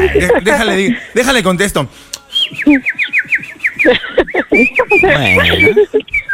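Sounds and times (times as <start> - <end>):
laughter: 0.0 - 1.2, 2.7 - 6.3
speech: 0.1 - 6.2
bird whistling: 2.3 - 6.3.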